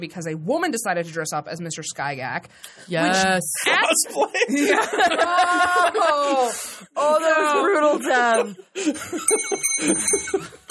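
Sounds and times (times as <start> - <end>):
speech: 0.0 - 10.6
laughter: 3.8 - 6.7, 7.3 - 10.6
cheap tinny bell sound effect ringing: 9.2 - 10.6.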